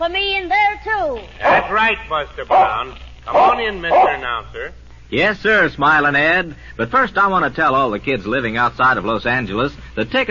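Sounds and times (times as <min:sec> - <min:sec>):
speech: 0:00.0 - 0:10.2
dog barking in yappy bursts: 0:01.4 - 0:01.9, 0:02.5 - 0:04.3.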